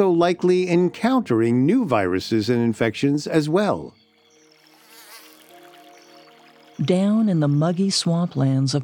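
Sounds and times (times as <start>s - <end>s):
speech: 0.0s - 4.0s, 6.8s - 8.8s
mosquitoes buzzing: 3.9s - 8.6s.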